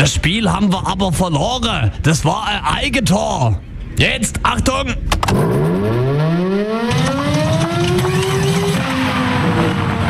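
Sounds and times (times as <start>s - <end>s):
speech: 0.0s - 7.1s
steady noise: 0.0s - 10.0s
mechanical siren winding up and cutting out: 5.3s - 10.0s.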